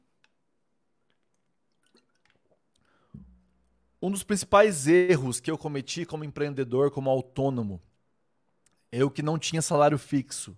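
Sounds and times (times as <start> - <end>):
person drinking water with sips and swallows: 0.2 - 3.9
speech: 4.0 - 7.9, 8.9 - 10.5.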